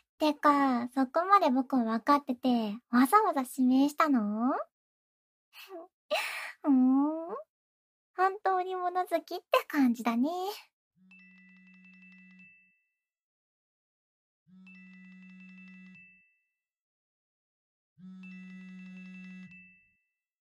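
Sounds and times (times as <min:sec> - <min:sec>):
speech: 0:00.2 - 0:04.7, 0:05.6 - 0:07.5, 0:08.2 - 0:10.7
phone ringtone ringing with sustained electronic tone: 0:11.0 - 0:12.9, 0:14.5 - 0:16.5, 0:18.0 - 0:20.1.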